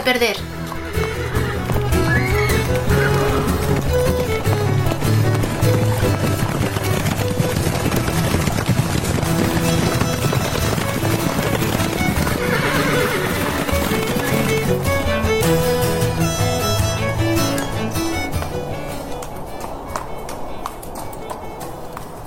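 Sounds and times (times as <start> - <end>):
speech: 0.0 - 1.4
horse hooves galloping in a quick steady rhythm: 0.0 - 22.2
horse whinny: 0.6 - 4.8, 11.1 - 14.8.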